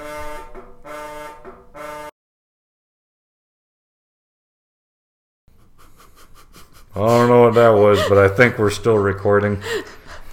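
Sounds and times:
phone buzzing with incoming call: 0:00.0 - 0:02.1
laughter: 0:05.6 - 0:10.3
speech: 0:07.0 - 0:09.9.

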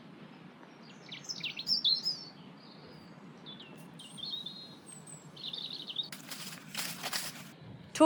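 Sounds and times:
low steady outdoor rumble: 0:00.0 - 0:08.0
woodland birds chirping and singing: 0:00.2 - 0:07.5
rustling noise: 0:06.0 - 0:07.6.

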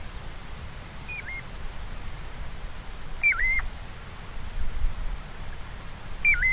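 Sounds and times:
steady hiss: 0:00.0 - 0:06.5
piping plover calls played from a bird app: 0:01.1 - 0:01.4, 0:03.2 - 0:03.6, 0:06.2 - 0:06.5.

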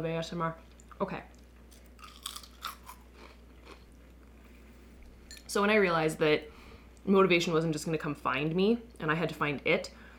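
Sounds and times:
speech: 0:00.0 - 0:01.4, 0:05.5 - 0:10.0
low steady hum: 0:00.0 - 0:10.1
chips being bitten and chewed: 0:01.7 - 0:03.8.

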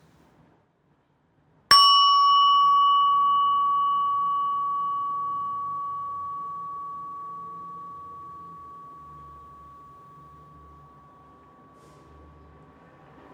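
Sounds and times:
handheld bell ringing: 0:01.7 - 0:12.4.

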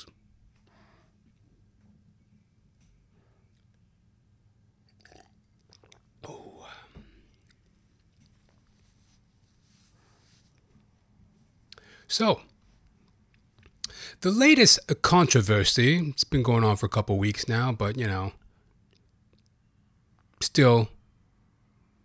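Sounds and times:
low steady hum: 0:00.0 - 0:22.0
gulp and swallow: 0:04.8 - 0:08.6
person sipping water: 0:04.8 - 0:09.3
speech: 0:12.1 - 0:12.5, 0:14.2 - 0:18.4, 0:20.4 - 0:21.0.

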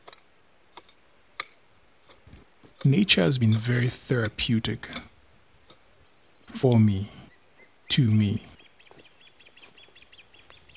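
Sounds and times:
birds chirping and singing: 0:02.2 - 0:10.7
speech: 0:02.8 - 0:05.1, 0:06.6 - 0:07.2, 0:07.9 - 0:08.5.

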